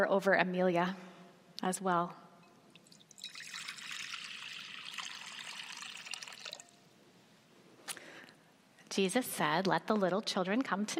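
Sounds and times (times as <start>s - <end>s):
speech: 0.0s - 2.2s, 9.0s - 10.9s
baptismal water poured during a baptism: 2.7s - 6.8s.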